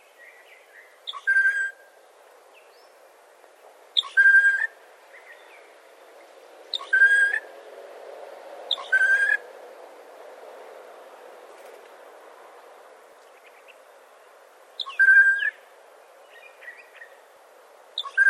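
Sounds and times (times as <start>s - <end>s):
low steady hiss: 0.0s - 18.2s
unidentified bird whistling: 1.1s - 1.8s, 4.0s - 4.7s, 6.8s - 7.4s, 8.7s - 9.4s, 14.8s - 15.6s, 18.0s - 18.2s.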